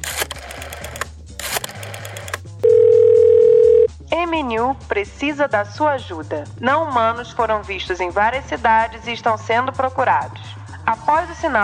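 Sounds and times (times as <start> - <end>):
telephone dial tone as a call is placed in Brazil: 0.0 - 3.9
speech: 4.8 - 10.4, 11.1 - 11.6.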